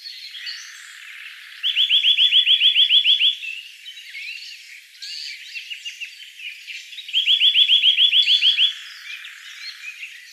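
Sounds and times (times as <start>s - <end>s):
Eurasian nuthatch Sitta europaea trill: 0.0s - 3.6s, 7.0s - 10.3s.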